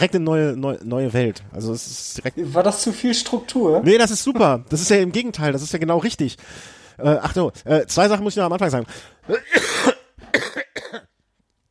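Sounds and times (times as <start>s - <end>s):
speech: 0.0s - 10.5s
rough chesty coughs: 9.2s - 11.2s.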